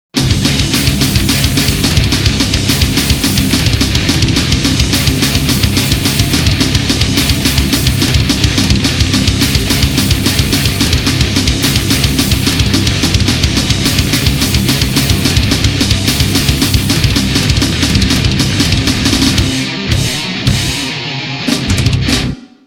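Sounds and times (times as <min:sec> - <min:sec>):
speed metal music: 0:00.1 - 0:22.6.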